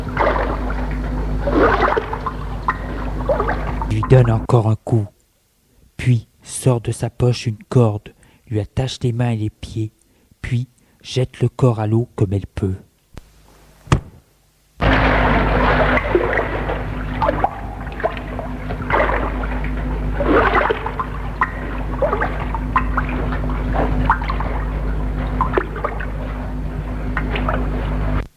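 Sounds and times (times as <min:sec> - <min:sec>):
oars rowing a boat across water: 0:00.0 - 0:04.3, 0:14.8 - 0:28.2
steady low hum: 0:00.0 - 0:28.3
speech: 0:04.1 - 0:05.2, 0:06.0 - 0:12.9.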